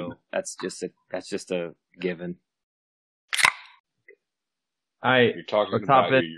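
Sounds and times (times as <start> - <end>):
speech: 0.4 - 2.5, 5.0 - 6.3
beer can cracking open: 3.4 - 3.7.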